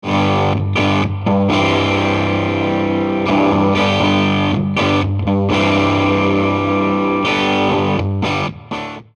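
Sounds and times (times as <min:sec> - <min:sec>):
guitar amplifier at volume 10: 0:00.0 - 0:09.1.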